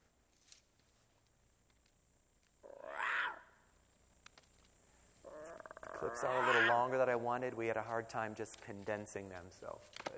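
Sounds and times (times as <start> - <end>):
lion cub's short squeaky roar: 2.6 - 3.6, 5.2 - 7.0
speech: 6.0 - 10.1.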